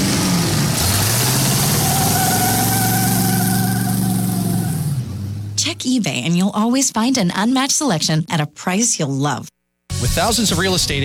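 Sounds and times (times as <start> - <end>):
supercharged car engine revving and idling: 0.0 - 5.8
speech: 5.8 - 11.0.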